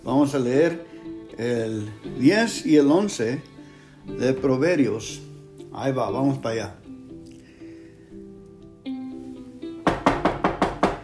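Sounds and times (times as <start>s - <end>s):
speech: 0.1s - 6.8s
firm knocks on a door: 9.8s - 11.0s.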